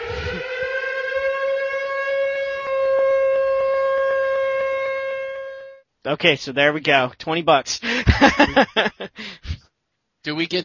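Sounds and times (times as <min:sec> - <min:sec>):
civil-defense-style siren wailing as a panic-button sound effect: 0:00.0 - 0:05.8
speech: 0:06.0 - 0:09.5, 0:10.2 - 0:10.6
laughter: 0:07.8 - 0:09.2.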